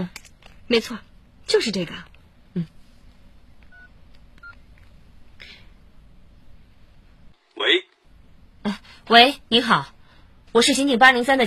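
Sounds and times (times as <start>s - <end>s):
speech: 0.0s - 2.8s, 8.7s - 10.0s, 10.6s - 11.4s
low hum: 0.0s - 11.4s
telephone keypad dialing tones: 3.7s - 4.6s.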